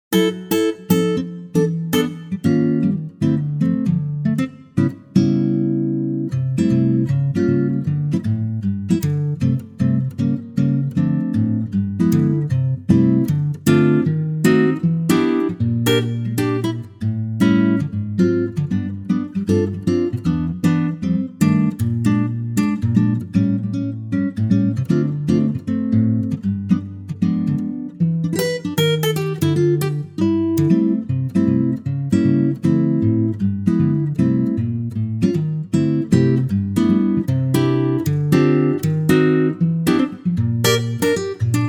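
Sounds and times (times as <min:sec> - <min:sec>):
acoustic guitar arrangement in C: 0:00.1 - 0:41.6.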